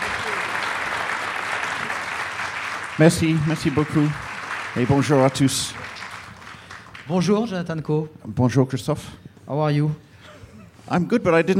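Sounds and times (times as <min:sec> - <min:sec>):
audience applause: 0:00.0 - 0:07.2
speech: 0:03.0 - 0:05.8, 0:07.1 - 0:10.0, 0:10.9 - 0:11.5.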